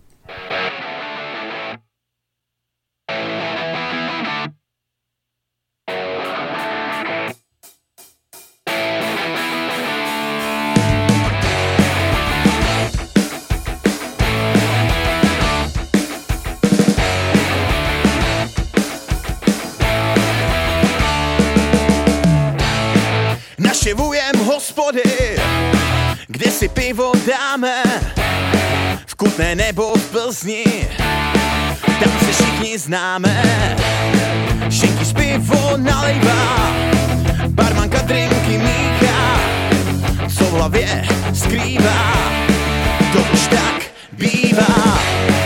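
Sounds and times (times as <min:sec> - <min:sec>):
distorted guitars: 0:00.0 - 0:01.9, 0:03.1 - 0:04.6, 0:05.9 - 0:07.4, 0:08.6 - 0:45.4
band's rock song played on the radio: 0:00.1 - 0:01.8, 0:03.1 - 0:04.6, 0:05.9 - 0:07.4, 0:08.7 - 0:45.4
heavy bass and drums: 0:10.8 - 0:24.3, 0:25.2 - 0:27.0, 0:28.0 - 0:29.9, 0:30.8 - 0:32.7, 0:33.3 - 0:45.4
speech: 0:29.5 - 0:31.4, 0:32.0 - 0:38.9, 0:40.6 - 0:43.8.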